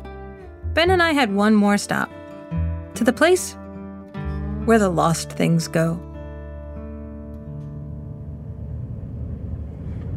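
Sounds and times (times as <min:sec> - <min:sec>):
speech: 0:00.8 - 0:02.2, 0:03.0 - 0:03.6, 0:04.7 - 0:06.1
road rumble: 0:07.2 - 0:10.1
car engine drone driving down into a valley toward a reservoir: 0:07.4 - 0:10.1.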